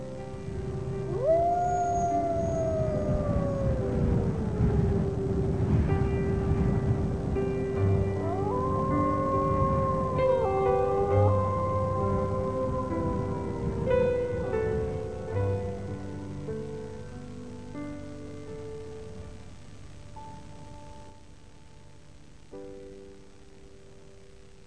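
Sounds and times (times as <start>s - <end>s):
steady rushing background: 0.0s - 17.6s
several wolves howling in chorus: 1.1s - 5.7s, 8.2s - 16.0s.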